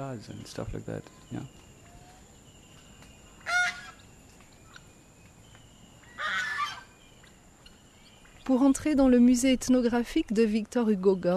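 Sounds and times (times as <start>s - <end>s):
speech: 0.0s - 1.6s, 8.5s - 11.3s
loud harsh farmyard bird calls: 0.0s - 8.8s
steady hum: 0.0s - 11.3s
farmyard chickens, guinea fowl and geese squawking and cackling: 3.3s - 4.9s, 6.0s - 7.0s.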